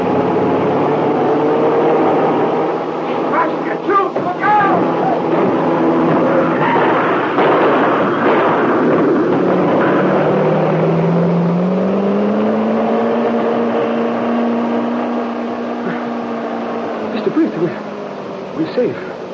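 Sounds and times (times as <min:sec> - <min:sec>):
car engine roaring and revving while crashing through a police roadblock: 0:00.0 - 0:19.3
impact bangs of car crashing through a police roadblock: 0:04.0 - 0:11.2.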